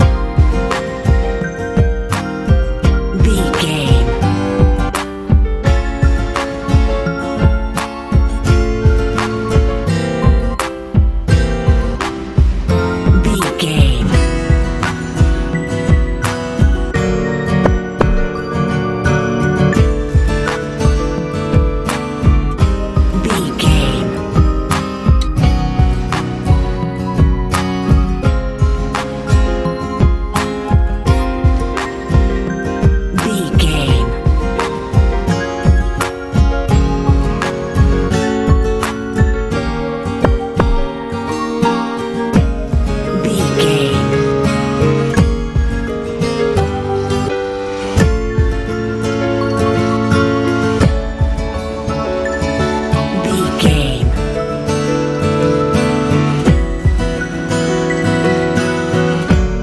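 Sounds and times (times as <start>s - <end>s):
techno music: 0.0s - 59.6s.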